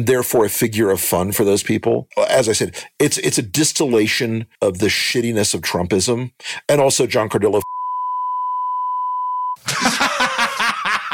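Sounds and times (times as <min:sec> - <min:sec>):
speech: 0:00.0 - 0:07.7
censor beep over profanity: 0:07.6 - 0:09.6
laughter: 0:09.6 - 0:11.1.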